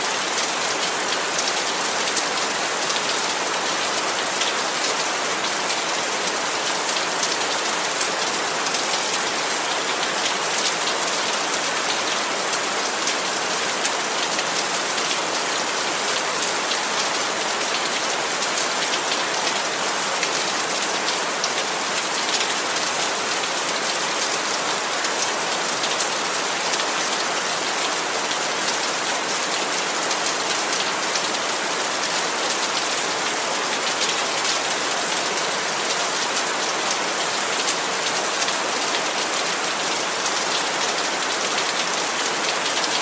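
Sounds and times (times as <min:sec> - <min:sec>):
rain falling steadily and densely on a surface: 0:00.0 - 0:43.0.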